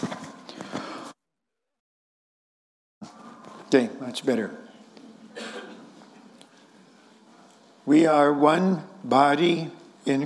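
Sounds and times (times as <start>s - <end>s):
speech: 3.7s - 4.6s, 7.9s - 10.2s
person clearing throat: 5.3s - 5.9s.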